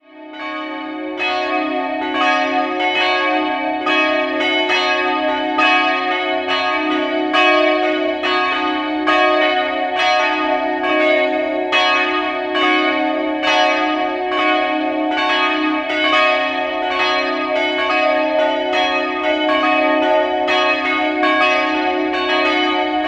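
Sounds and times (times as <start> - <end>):
church bells of Passionskirche in Nürnberg Langwasser: 0.0 - 23.0.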